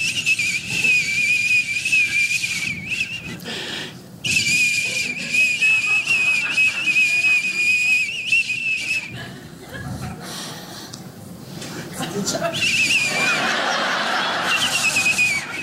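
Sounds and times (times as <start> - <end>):
high-pitched whistling tone inside a house: 0.0 - 3.4, 4.2 - 9.2, 14.4 - 15.6
laughter: 4.8 - 8.2, 8.8 - 10.3, 11.7 - 15.6.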